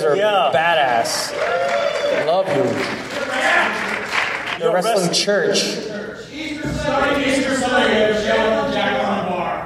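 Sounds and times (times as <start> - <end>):
speech: 0.0 - 4.0, 4.6 - 9.0
crowd cheering with voices: 0.5 - 4.8
audience clapping: 0.8 - 4.8.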